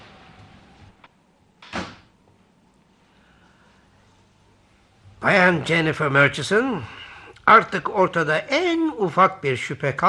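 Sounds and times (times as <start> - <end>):
door pulled shut with a solid thud: 1.6 - 2.1
speech: 5.2 - 10.0.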